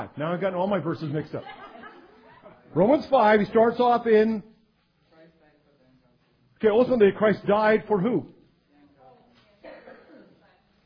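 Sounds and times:
speech: 0.1 - 1.7, 2.8 - 4.5, 6.6 - 8.4
laughter: 1.0 - 2.7
person coughing: 9.6 - 10.4.

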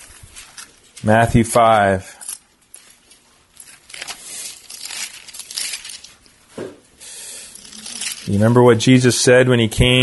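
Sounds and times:
pages of a Bible being flipped: 0.0 - 1.2, 2.3 - 6.8, 7.5 - 8.6
speech: 1.0 - 2.2, 8.3 - 10.0.

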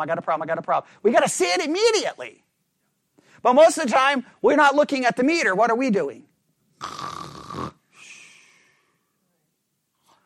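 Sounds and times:
speech: 0.0 - 2.5, 3.4 - 7.2
person imitating snoring with the voice: 6.8 - 7.8.

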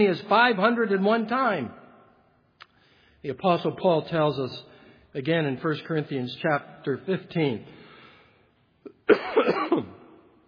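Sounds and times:
speech: 0.0 - 1.8, 3.2 - 7.8, 9.1 - 10.0
preacher coughing in the pulpit during a sermon: 8.9 - 10.1.

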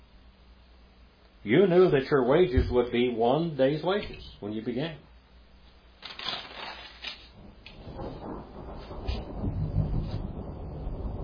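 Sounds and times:
speech: 1.4 - 5.1
cracking noises: 6.0 - 10.3
rolling thunder: 7.4 - 11.2.

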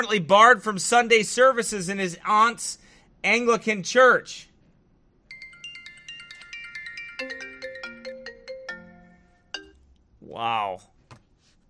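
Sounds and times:
speech: 0.0 - 4.5, 10.3 - 10.9
phone ringtone with melodic electronic tune: 5.3 - 9.8.

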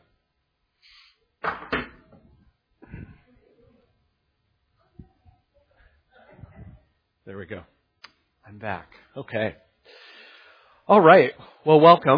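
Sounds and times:
door swinging shut with sharp knocks: 1.4 - 2.3
speech: 7.3 - 7.8, 8.5 - 9.7, 10.9 - 12.1.

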